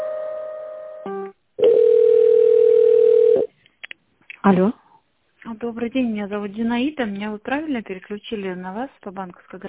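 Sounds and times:
long loud steady single telephone tone: 1.6 - 3.5
speech: 4.5 - 4.8, 5.6 - 9.6.

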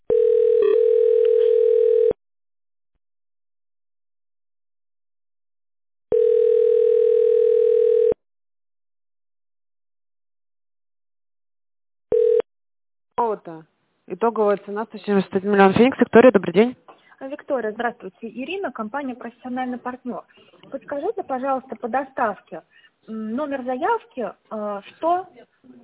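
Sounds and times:
telephone ringback tone of a call placed to a company's line: 0.1 - 2.2, 6.1 - 8.2, 12.1 - 12.4
speech: 13.5 - 25.8.

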